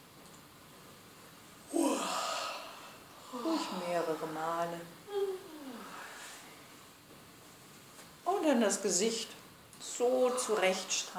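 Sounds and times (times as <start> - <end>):
person yawning deliberately during a face self-massage exercise: 1.7 - 3.8
speech: 3.6 - 5.0, 8.4 - 11.1.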